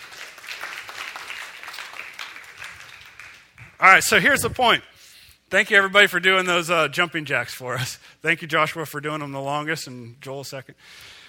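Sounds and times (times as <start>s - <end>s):
crowd applauding: 0.0s - 4.5s
speech: 3.8s - 4.9s, 5.5s - 11.2s.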